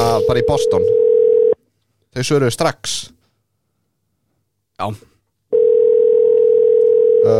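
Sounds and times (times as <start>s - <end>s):
telephone ringing tone while calling a coffee shop: 0.1s - 1.6s, 5.5s - 7.3s
speech: 0.2s - 1.0s, 2.1s - 3.2s, 4.8s - 5.1s.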